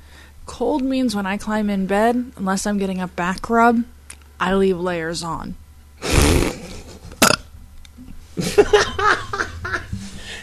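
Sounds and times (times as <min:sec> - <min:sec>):
speech: 0:00.5 - 0:05.6, 0:08.6 - 0:09.2
person chuckling with voiced sounds: 0:06.0 - 0:07.3, 0:08.4 - 0:10.4
loud burp: 0:07.2 - 0:07.5.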